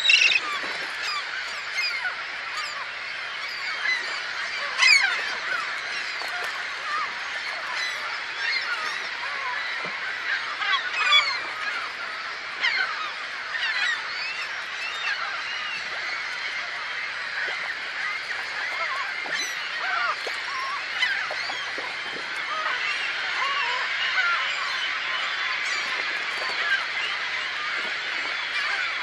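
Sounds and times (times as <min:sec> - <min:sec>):
dense continuous chorus of many birds calling: 0:00.0 - 0:29.0.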